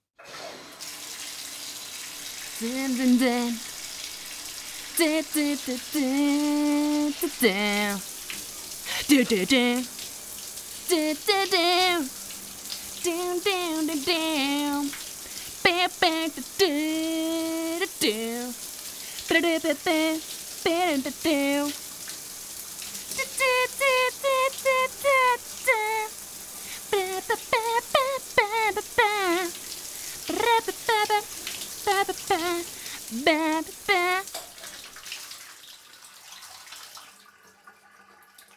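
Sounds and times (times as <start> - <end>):
shower water spraying: 0.6 - 35.6
person singing in the shower: 2.6 - 3.7, 4.9 - 8.0, 8.9 - 9.9, 10.9 - 12.2, 13.0 - 15.0, 15.6 - 18.6, 19.2 - 21.8, 23.1 - 26.2, 26.8 - 29.6, 30.2 - 34.4
speech: 2.6 - 3.7, 5.0 - 8.1, 9.1 - 10.0, 10.9 - 12.2, 13.0 - 15.0, 15.7 - 18.6, 19.3 - 21.8, 31.9 - 34.3.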